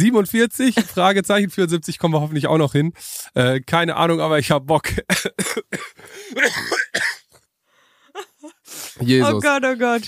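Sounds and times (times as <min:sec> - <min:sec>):
speech: 0:00.0 - 0:07.1, 0:08.2 - 0:10.0
coughing fit of harsh raspy coughs: 0:05.0 - 0:07.4.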